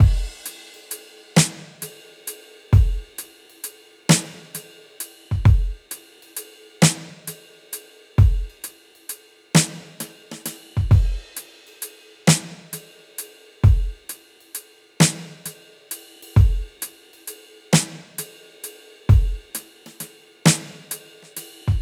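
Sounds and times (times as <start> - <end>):
drums playing a slow blues shuffle: 0.0 - 0.5, 2.8 - 3.2, 4.1 - 4.6, 5.3 - 5.8, 8.2 - 8.6, 9.6 - 11.2, 13.6 - 14.0, 16.4 - 16.8, 19.1 - 21.0.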